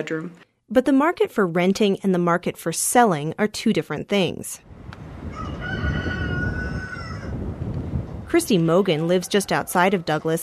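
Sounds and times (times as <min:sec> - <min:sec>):
speech: 0:00.0 - 0:04.7, 0:08.3 - 0:10.4
rooster crowing: 0:05.2 - 0:07.4.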